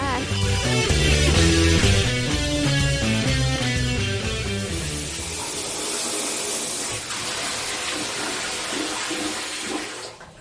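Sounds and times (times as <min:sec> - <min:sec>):
music: 0:00.0 - 0:05.8
shower water running: 0:00.2 - 0:10.3.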